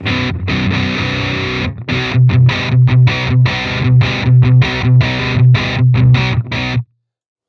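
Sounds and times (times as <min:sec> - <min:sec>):
electric guitar riff through reverb and distortion pedal: 0:00.0 - 0:06.9.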